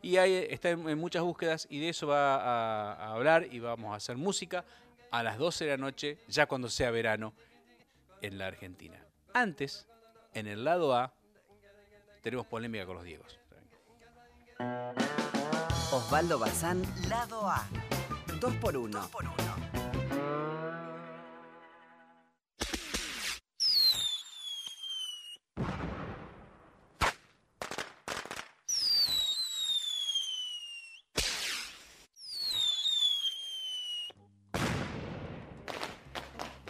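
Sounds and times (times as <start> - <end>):
speech: 0.0 - 7.5, 8.2 - 11.2, 12.2 - 13.4, 14.6 - 15.2, 15.9 - 20.5
high descending whistles from firework rockets: 22.7 - 25.5, 28.7 - 34.2
fireworks exploding with loud bangs and sharp cracks: 22.7 - 36.6.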